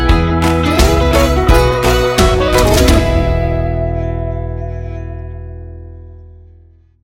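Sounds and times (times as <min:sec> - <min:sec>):
electric folk music sting: 0:00.2 - 0:05.6.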